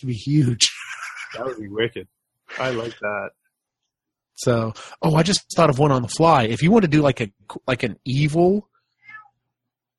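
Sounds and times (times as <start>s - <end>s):
speech: 0.0s - 0.8s, 1.4s - 3.4s, 4.4s - 8.7s
cat meowing: 8.9s - 9.4s.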